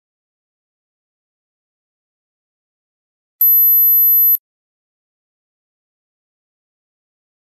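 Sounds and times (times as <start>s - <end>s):
high-pitched smartphone ringtone tones: 3.4s - 4.4s.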